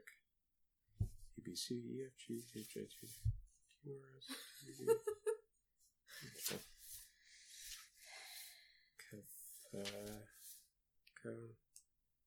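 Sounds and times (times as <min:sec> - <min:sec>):
speech: 0:01.4 - 0:05.2, 0:06.2 - 0:06.8, 0:09.1 - 0:10.4, 0:11.2 - 0:11.6
laughter: 0:04.3 - 0:05.4
dictionary paper pages rustling and flipping: 0:09.6 - 0:10.6.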